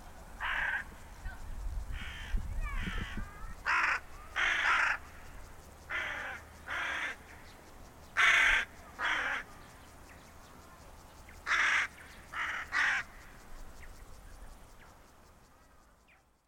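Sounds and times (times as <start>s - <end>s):
carrion crow cawing: 0.4s - 0.9s, 2.0s - 7.5s, 8.2s - 9.5s, 11.4s - 13.4s.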